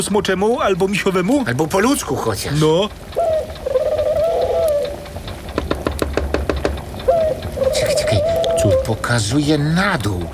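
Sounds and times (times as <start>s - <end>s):
speech: 0.0s - 3.3s, 8.6s - 10.3s
pigeon cooing in low warbling rolls: 3.2s - 5.1s, 7.0s - 9.3s
sharp knocking taps of beak pecking or wings clapping: 3.2s - 7.8s.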